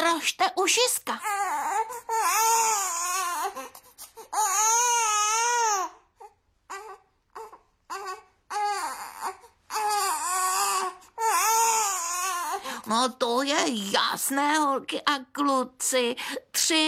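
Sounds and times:
speech: 0:00.2 - 0:02.8, 0:12.9 - 0:16.8
baby crying: 0:01.1 - 0:12.8.

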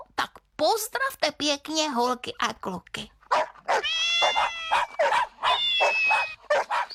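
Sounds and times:
speech: 0:00.6 - 0:03.2
dogs barking and yipping: 0:03.3 - 0:06.9
cats meowing: 0:03.7 - 0:06.8.

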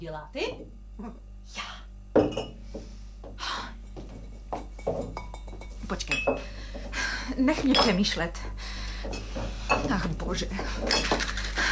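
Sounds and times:
speech: 0:00.0 - 0:02.8, 0:07.4 - 0:08.7, 0:09.9 - 0:11.3
glass bottles clinking as they're handled: 0:02.2 - 0:02.6, 0:04.1 - 0:06.9, 0:07.5 - 0:08.2, 0:09.0 - 0:11.7.

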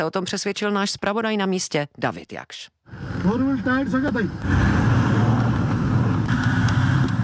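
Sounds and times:
speech: 0:00.0 - 0:04.9
Toyota car engine rumbling: 0:02.9 - 0:07.2.

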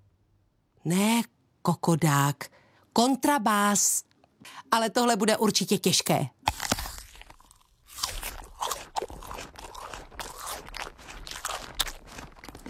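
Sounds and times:
speech: 0:00.8 - 0:06.4
crisp bite into an apple: 0:06.4 - 0:12.6
loud wet crunching of an apple being chewed: 0:06.4 - 0:12.6.

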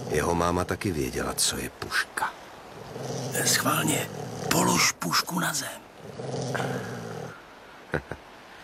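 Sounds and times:
dog growling behind a cabin: 0:00.0 - 0:00.8, 0:02.7 - 0:07.4
speech: 0:00.1 - 0:02.4, 0:03.0 - 0:07.0.

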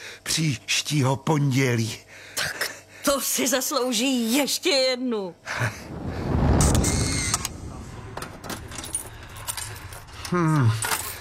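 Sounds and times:
speech: 0:00.2 - 0:02.6, 0:03.2 - 0:06.0, 0:10.3 - 0:10.9
low rumble: 0:05.4 - 0:10.3
bunch of clubroom keys jangling: 0:08.7 - 0:11.1.

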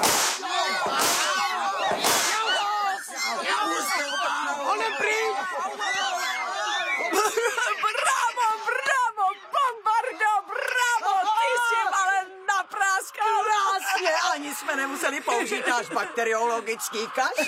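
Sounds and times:
whip cracking: 0:00.0 - 0:02.5
laughter: 0:00.0 - 0:12.2, 0:13.2 - 0:17.4
people shouting and squealing excitedly: 0:00.0 - 0:15.6, 0:16.4 - 0:17.4
speech: 0:15.4 - 0:17.4.

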